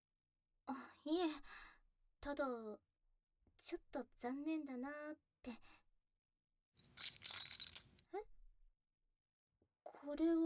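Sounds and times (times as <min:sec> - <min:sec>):
speech: 0:00.7 - 0:02.9, 0:03.6 - 0:05.8, 0:09.9 - 0:10.4
house keys jingling while being handed over: 0:06.8 - 0:08.0.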